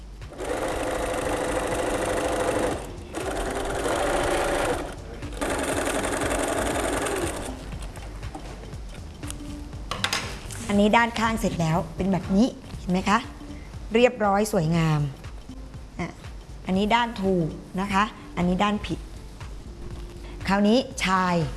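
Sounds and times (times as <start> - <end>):
sewing machine stitching canvas or cotton fabric: 0.3 - 7.6
speech: 10.8 - 15.2, 16.0 - 19.0, 20.5 - 21.5.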